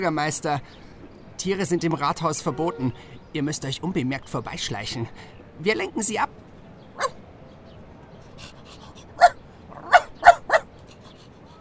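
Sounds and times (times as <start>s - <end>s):
speech: 0.0s - 0.8s, 1.4s - 6.4s
dog barking: 7.0s - 7.2s, 9.2s - 10.7s.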